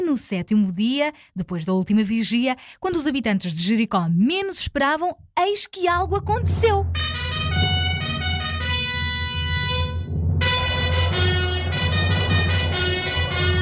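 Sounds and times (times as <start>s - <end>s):
speech: 0.1s - 7.2s
many brassy horns blaring together: 6.3s - 13.6s.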